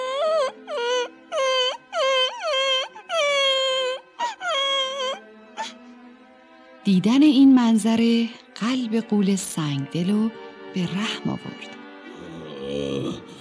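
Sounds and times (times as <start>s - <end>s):
young boy sobbing and wailing: 0.0s - 5.8s
speech: 6.8s - 11.8s, 12.6s - 13.3s.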